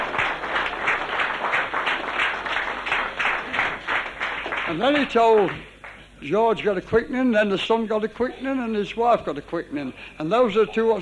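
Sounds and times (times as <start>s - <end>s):
audience applause at a religious meeting: 0.0s - 6.0s
speech: 4.7s - 11.0s.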